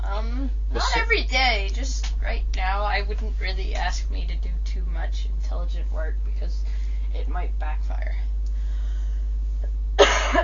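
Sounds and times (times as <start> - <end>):
faint low hum: 0.0 - 10.4
speech: 3.0 - 8.4, 9.6 - 10.4
rough hacking coughing fit: 10.0 - 10.4.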